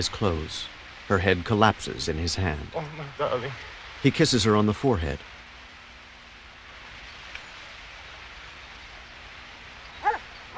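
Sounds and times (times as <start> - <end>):
speech: 0.0 - 5.4
hiss: 0.0 - 10.5
shepherd boy's dog barking on a hill: 10.0 - 10.5.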